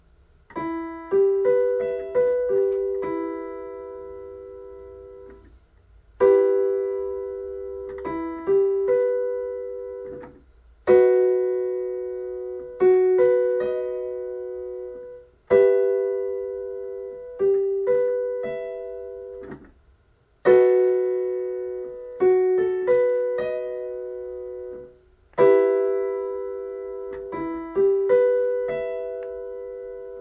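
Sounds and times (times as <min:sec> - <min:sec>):
E minor chords: 0:00.0 - 0:19.7, 0:20.3 - 0:30.1.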